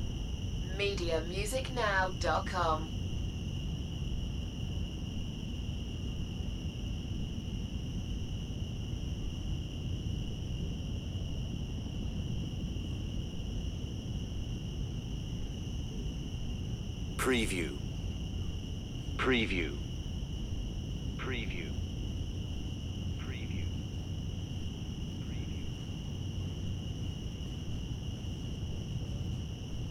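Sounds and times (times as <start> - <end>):
cicadas buzzing in Central Park: 0.0 - 2.2, 2.8 - 29.8
steady low background rumble: 0.0 - 29.8
speech: 0.8 - 3.0, 17.2 - 17.9, 19.2 - 19.8, 21.3 - 21.8.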